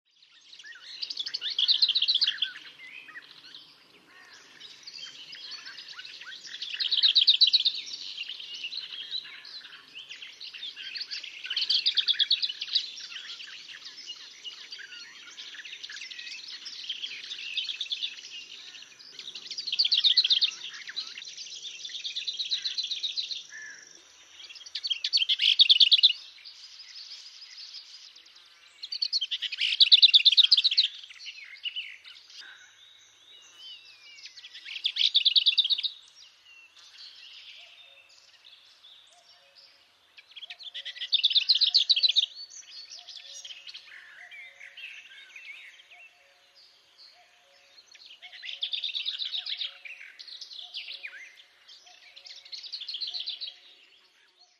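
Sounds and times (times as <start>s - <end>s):
lesser whitethroat singing: 0.0s - 54.5s.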